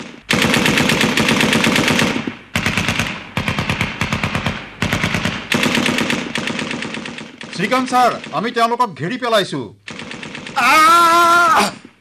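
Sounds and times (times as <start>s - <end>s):
rapid automatic gunfire during a chase: 0.0s - 8.7s, 9.9s - 10.8s
speech: 7.6s - 9.8s, 10.6s - 11.8s.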